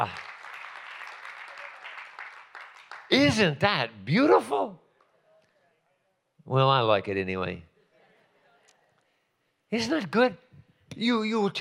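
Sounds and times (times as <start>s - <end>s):
speech: 0.0s - 0.3s, 3.1s - 4.8s, 6.4s - 7.7s, 9.7s - 10.4s, 11.0s - 11.6s
church congregation clapping hands: 0.0s - 3.6s.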